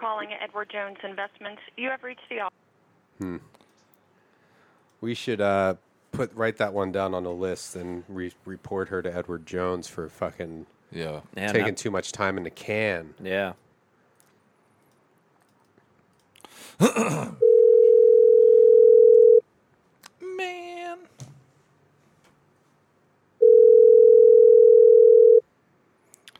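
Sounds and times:
speech: 0.2s - 2.6s, 3.2s - 3.6s, 5.0s - 13.6s, 16.8s - 17.4s
telephone ringback tone on an outgoing call: 17.4s - 19.4s, 23.4s - 25.4s.

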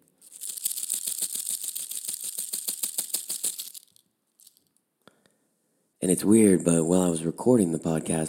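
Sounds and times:
rattlesnake rattle shaken in a rapid dry buzz: 0.0s - 4.7s
speech: 6.0s - 8.2s.

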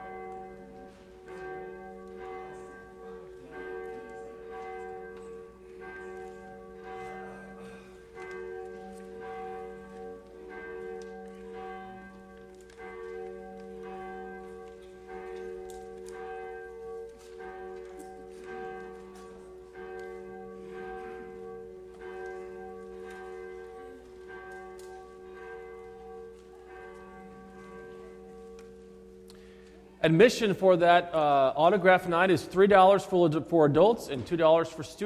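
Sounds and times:
church bell ringing: 0.0s - 35.0s
speech: 30.0s - 35.0s.

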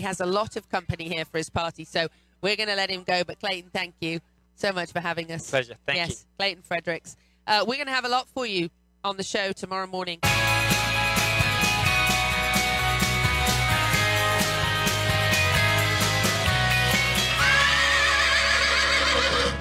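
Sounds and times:
speech: 0.0s - 10.6s
rhythmic music bed: 10.2s - 18.2s
horse whinnying at a stable: 17.4s - 19.5s.

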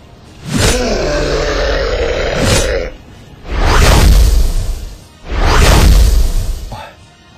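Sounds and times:
deep growling roar: 0.6s - 3.8s
blade swings whooshing through the air in a fight against a demon: 3.4s - 6.8s.

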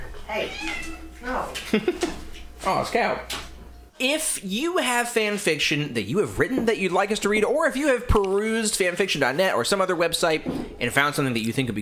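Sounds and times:
cat trying to escape meowing: 0.3s - 1.2s
speech: 0.3s - 3.4s, 4.0s - 11.7s
laughter: 1.6s - 2.2s.

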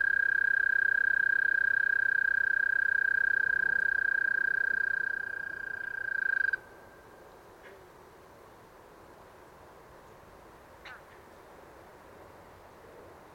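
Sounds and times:
Eastern American toad trilling in west Dyke Marsh: 0.0s - 6.7s
faint low background noise: 0.0s - 13.3s.

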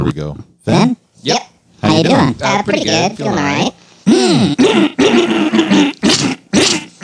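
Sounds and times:
speech: 0.1s - 1.4s, 2.5s - 3.7s
man clearing his throat: 4.1s - 7.0s.

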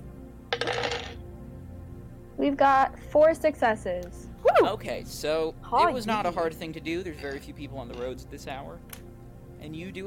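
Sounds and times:
two dice rolled for a driving check clattering across a hard surface: 0.5s - 1.2s
speech: 2.4s - 9.0s, 9.6s - 10.0s.

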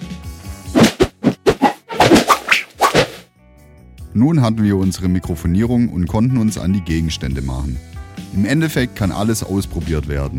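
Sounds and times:
clothes hanger swung rapidly through the air: 0.8s - 3.2s
speech: 4.2s - 10.3s.

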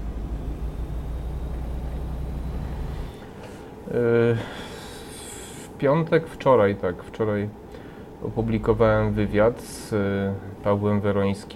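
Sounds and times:
truck engine rumbling while driving off to pick up a load: 0.0s - 4.0s, 8.2s - 9.6s
speech: 3.9s - 4.7s, 5.8s - 11.5s.

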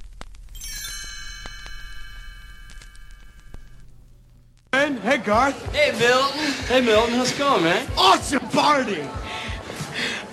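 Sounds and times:
single bright metallic chime ringing: 0.5s - 4.1s
speech: 5.0s - 9.2s.

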